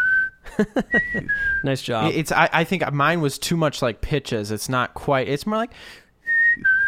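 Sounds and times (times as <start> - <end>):
person whistling two notes imitating a bird call: 0.0 - 1.7, 6.2 - 6.8
laughter: 0.5 - 1.4
speech: 0.6 - 6.0.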